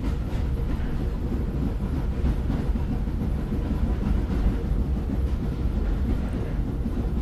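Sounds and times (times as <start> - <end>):
train passing over the tracks through a train station: 0.0 - 7.2.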